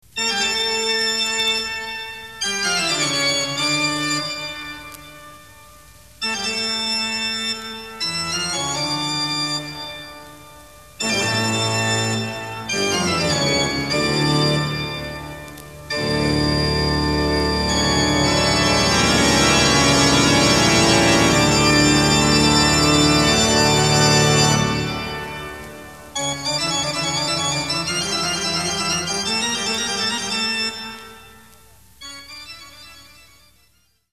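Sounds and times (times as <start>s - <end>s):
phantom organ: 0.1s - 34.1s.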